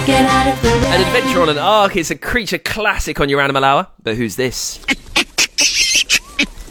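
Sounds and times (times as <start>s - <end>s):
speech: 0.0s - 5.8s
large monkey giving loud shaky screechy calls: 4.8s - 6.6s.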